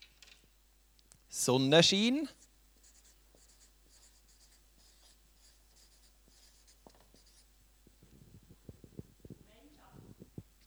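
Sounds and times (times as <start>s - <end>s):
speech: 1.4s - 2.4s
pen or marker scratching and tapping across a surface while noting down words: 2.4s - 10.6s.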